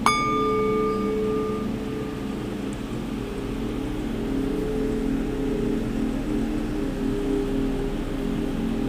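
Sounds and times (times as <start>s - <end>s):
singing bowl struck and ringing: 0.1s - 3.7s
steady low hum: 0.1s - 8.8s.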